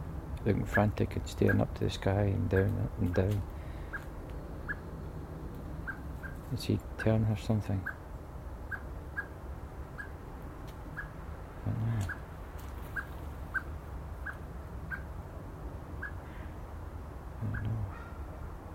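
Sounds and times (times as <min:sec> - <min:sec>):
low outdoor rumble: 0:00.0 - 0:18.7
speech: 0:00.4 - 0:03.6, 0:06.5 - 0:08.0
blackbird calling in a garden: 0:02.5 - 0:04.9, 0:05.8 - 0:06.5, 0:07.8 - 0:10.2, 0:10.8 - 0:15.2, 0:15.9 - 0:16.6, 0:17.4 - 0:18.5.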